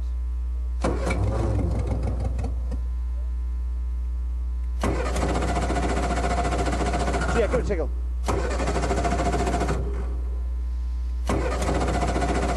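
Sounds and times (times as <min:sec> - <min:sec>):
hum: 0:00.0 - 0:12.5
engine cranking without catching from lack of fuel: 0:00.8 - 0:02.6, 0:04.8 - 0:07.6, 0:08.2 - 0:10.1, 0:11.3 - 0:12.5
speech: 0:07.4 - 0:08.0.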